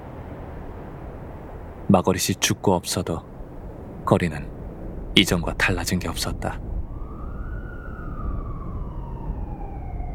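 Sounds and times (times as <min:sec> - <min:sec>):
low traffic rumble: 0:00.0 - 0:10.1
speech: 0:01.9 - 0:03.3, 0:04.1 - 0:04.5, 0:05.2 - 0:06.7
wailing emergency siren: 0:06.6 - 0:10.1.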